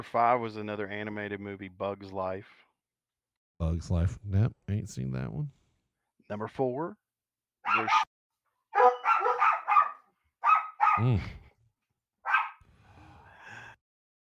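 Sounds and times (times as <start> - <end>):
speech: 0.0 - 2.7, 3.6 - 5.6, 6.3 - 7.0, 7.6 - 8.1, 11.0 - 11.4
dogs barking: 7.6 - 8.1, 8.8 - 11.2, 12.3 - 12.6
dog whining: 8.8 - 9.8.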